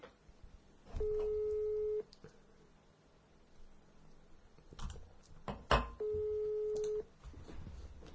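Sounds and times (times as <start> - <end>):
outgoing phone call ringback tone: 1.0 - 2.1, 6.0 - 7.1.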